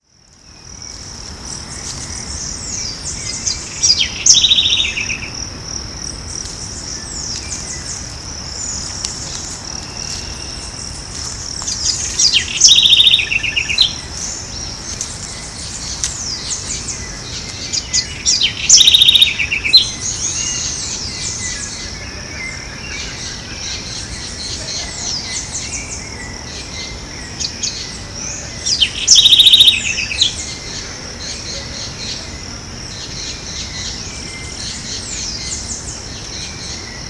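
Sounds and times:
Troglodytes musculus singing: 0.3 - 37.0.

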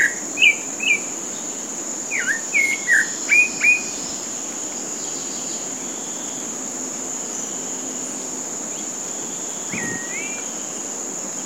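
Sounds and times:
constant shrill insect hum on a golf course in Bahia Brazil: 0.0 - 11.4
Pale-breasted thrush Turdus leucomelas singing whistled phrases on a golf course in Bahia Brazil: 9.7 - 10.6.

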